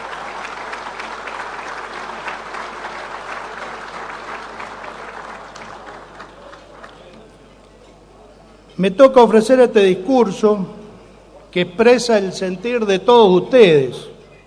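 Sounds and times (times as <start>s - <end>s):
crowd applauding at a business chamber luncheon: 0.0s - 7.5s
speech: 8.8s - 10.8s, 11.6s - 14.1s.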